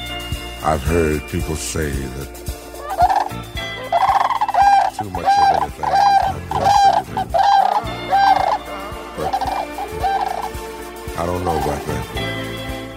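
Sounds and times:
speech: 0.6 - 2.5
cranes calling with loud harsh trumpeting notes: 2.7 - 12.0.

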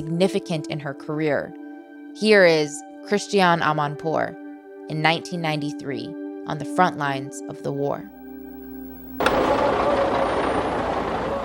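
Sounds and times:
speech: 0.0 - 1.6, 2.2 - 8.2
brief low hum: 8.1 - 11.4
heavy truck engine rumbling: 8.1 - 11.4
broad road noise: 8.2 - 11.4.

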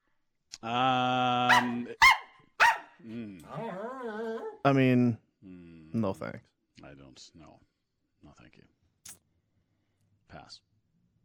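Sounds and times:
speech: 0.6 - 2.1, 4.6 - 5.2, 6.0 - 7.6, 10.3 - 10.7
dog barking sharply: 1.5 - 3.0
dog whining or howling: 3.5 - 4.7.

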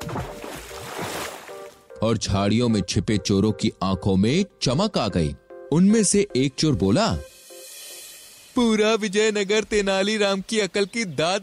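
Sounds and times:
heavy box plunging into well water: 0.0 - 1.8
speech: 2.0 - 7.3, 8.6 - 11.4.

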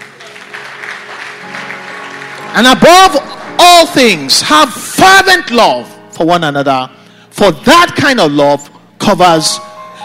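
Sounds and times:
audience clapping: 0.0 - 3.2
speech: 2.6 - 9.7.

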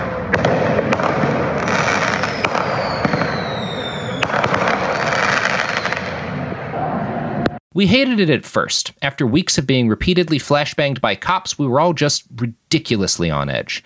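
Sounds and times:
mortar fireworks crackling and banging around a crowd in front of the Justice Center: 0.0 - 6.6
crowd noise in front of the Justice Center: 0.0 - 7.6
speech: 7.8 - 13.8.

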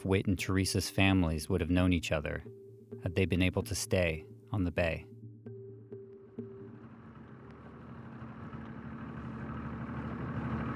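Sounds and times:
speech: 0.0 - 5.1
boat motor idling as the boat comes ashore: 5.5 - 10.7.

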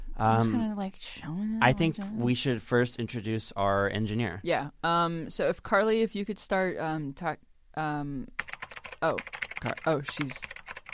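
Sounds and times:
speech: 0.2 - 8.4, 9.0 - 10.6
typing on a computer keyboard: 8.4 - 10.9.

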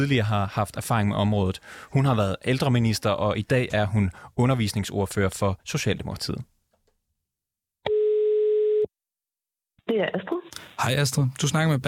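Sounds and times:
speech: 0.0 - 6.5, 10.0 - 11.8
telephone ringback tone of an outgoing call: 7.9 - 8.9.

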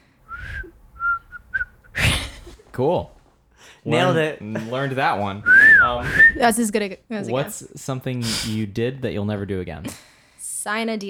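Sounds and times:
breathy burst: 0.0 - 2.6, 5.4 - 6.4
person whistling a short wavering tune: 0.3 - 1.8, 5.5 - 6.4
speech: 2.8 - 3.2, 3.8 - 11.0.

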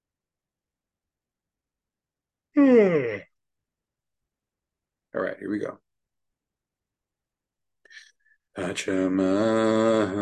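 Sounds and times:
speech: 2.6 - 3.2, 5.2 - 5.8, 8.6 - 10.2
long human yawn: 2.6 - 3.3, 9.2 - 10.2.

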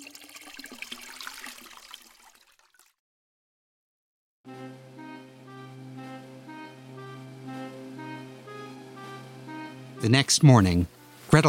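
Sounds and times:
water poured and splashing to be boiled: 0.0 - 3.0
steady harmonic musical tone: 4.5 - 11.4
speech: 10.0 - 11.4.

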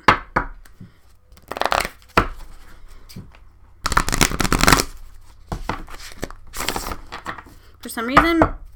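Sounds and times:
oracle card deck being shuffled: 1.3 - 2.6, 3.8 - 7.4
speech: 7.8 - 8.6.

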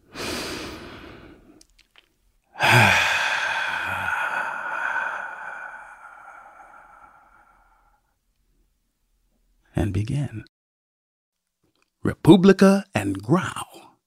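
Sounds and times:
deep breath in and out: 0.0 - 1.6, 2.5 - 8.2
speech: 10.0 - 10.5, 12.3 - 13.8.

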